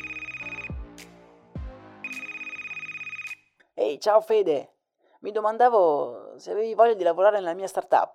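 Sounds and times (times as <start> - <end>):
desk telephone ringing with bright warbling electronic trill: 0.0 - 0.7, 2.1 - 3.4
speech: 3.9 - 8.1.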